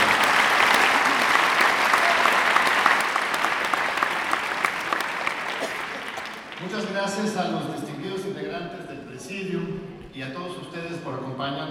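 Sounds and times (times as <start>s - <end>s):
audience applause: 0.0s - 6.9s
speech: 7.1s - 7.9s, 8.6s - 11.7s.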